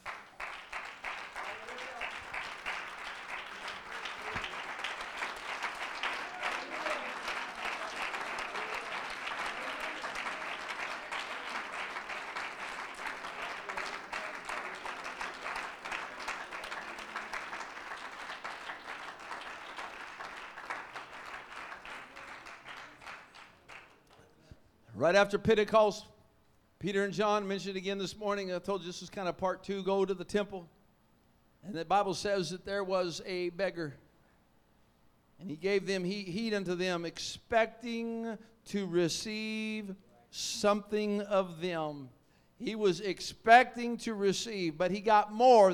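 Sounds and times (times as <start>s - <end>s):
large standing audience applauding: 0.0s - 24.2s
speech: 25.0s - 26.1s, 26.8s - 30.8s, 31.6s - 34.0s, 35.5s - 45.7s.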